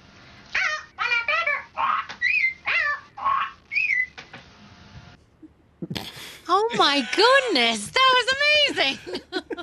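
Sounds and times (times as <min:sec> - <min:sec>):
person mimicking a parrot with shrill squawking chirps: 0:00.5 - 0:04.1
speech: 0:06.5 - 0:09.2
laughter: 0:06.6 - 0:07.6, 0:08.4 - 0:09.6.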